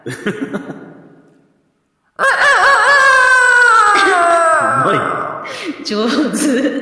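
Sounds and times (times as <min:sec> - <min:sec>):
speech: 0:00.0 - 0:00.9
laughter: 0:00.0 - 0:01.1
person imitating a rooster crowing in a private house: 0:02.2 - 0:05.3.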